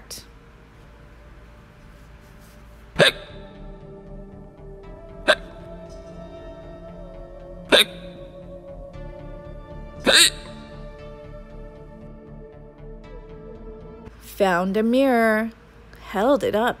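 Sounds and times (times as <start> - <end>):
person hiccuping with sharp voiced gulping yelps: 3.0 - 3.6, 5.2 - 5.6, 7.6 - 8.3, 10.0 - 10.8
speech: 14.4 - 16.7.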